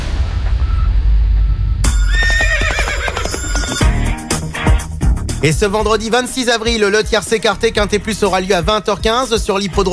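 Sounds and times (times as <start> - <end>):
low rumbling background: 0.0 - 1.9
horse whinnying: 1.9 - 4.0
speech: 5.4 - 9.9.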